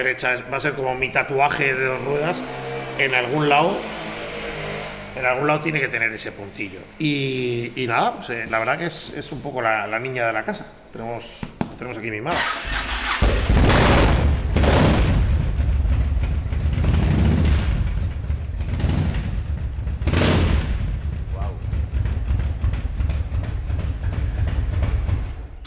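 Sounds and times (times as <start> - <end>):
speech: 0.0 - 4.0, 5.2 - 12.8
motorcycle engine revving: 0.9 - 7.8, 12.4 - 25.6.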